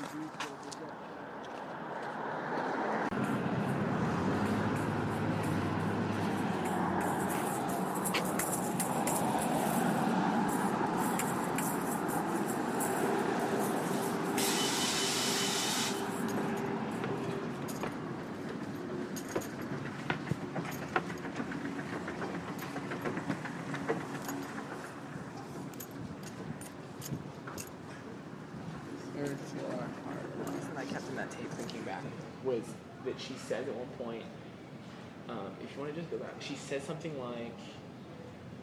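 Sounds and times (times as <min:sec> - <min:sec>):
city bus rumbling past without stopping: 0:00.0 - 0:32.5
street traffic: 0:00.0 - 0:38.6
air hiss from city bus: 0:13.9 - 0:16.1
speech: 0:35.8 - 0:37.8.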